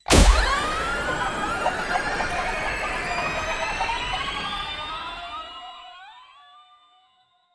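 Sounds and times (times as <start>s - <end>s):
solar power-up attack effect: 0.0s - 5.4s.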